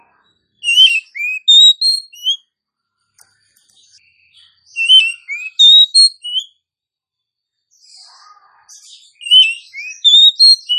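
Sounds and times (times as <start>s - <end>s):
Oriental magpie-robin calling whistled notes: 0.6s - 2.4s, 4.8s - 6.5s, 9.2s - 10.7s.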